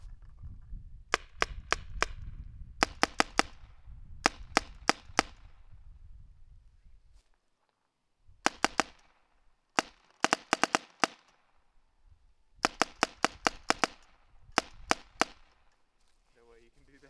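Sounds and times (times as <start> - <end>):
Spyder short barrel gun shots with no clip: 2.8 - 5.5, 8.4 - 9.2, 9.8 - 11.3, 12.6 - 15.6.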